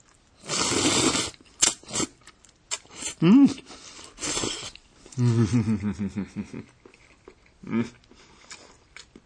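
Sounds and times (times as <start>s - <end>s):
person chewing and slurping a silky pure white food: 0.1s - 5.2s, 6.8s - 9.2s
person humming appreciatively: 3.2s - 3.6s, 5.2s - 6.7s, 7.6s - 8.0s.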